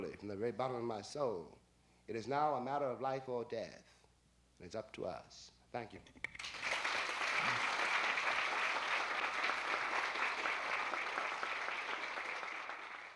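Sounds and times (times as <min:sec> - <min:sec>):
speech: 0:00.0 - 0:04.0, 0:04.6 - 0:06.3
large audience applause: 0:06.4 - 0:13.1.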